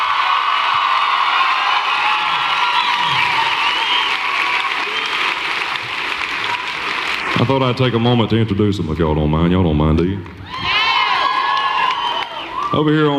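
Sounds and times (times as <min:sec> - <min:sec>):
crowd cheering and whooping: 0:00.0 - 0:07.3, 0:10.4 - 0:13.0
crowd applauding loudly: 0:00.0 - 0:08.4, 0:10.5 - 0:13.0
speech: 0:07.5 - 0:10.7, 0:12.7 - 0:13.1.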